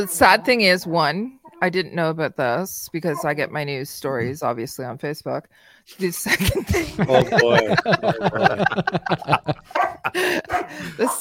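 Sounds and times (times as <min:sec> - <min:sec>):
speech: 0:00.0 - 0:11.1
dogs barking: 0:03.1 - 0:03.4, 0:09.2 - 0:11.1
laughter: 0:06.2 - 0:11.1.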